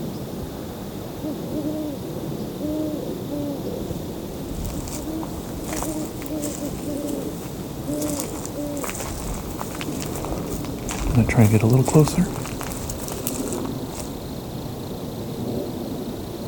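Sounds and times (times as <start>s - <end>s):
steady outdoor hiss: 0.1s - 16.4s
owl hooting: 1.2s - 14.1s
faint rustles: 4.2s - 14.3s
faint ticks: 4.5s - 14.2s
speech: 11.3s - 12.4s.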